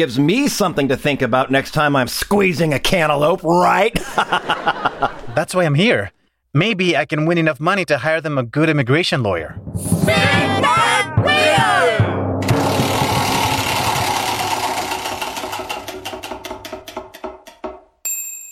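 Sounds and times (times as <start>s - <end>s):
speech: 0.0s - 11.9s
laughter: 3.8s - 5.5s
noisy game show crowd cheering: 10.0s - 15.9s
game show prize wheel clattering with rapid ticks: 12.4s - 18.4s
bright ding: 18.0s - 18.4s.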